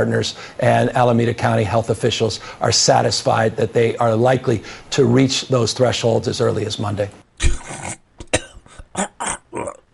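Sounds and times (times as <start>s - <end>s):
speech: 0.0s - 7.6s
person coughing and gagging: 7.4s - 9.9s.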